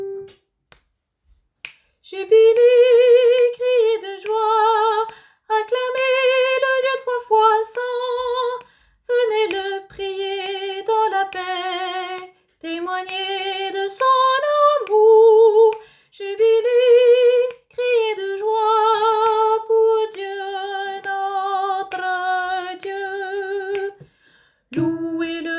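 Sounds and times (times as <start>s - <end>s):
soprano singing: 2.1s - 24.1s, 24.7s - 25.5s.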